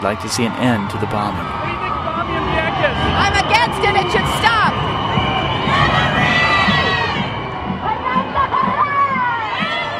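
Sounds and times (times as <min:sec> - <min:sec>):
speech: 0:00.0 - 0:02.4, 0:03.0 - 0:04.5
large outdoor parade crowd in New York screaming and cheering: 0:00.0 - 0:09.9.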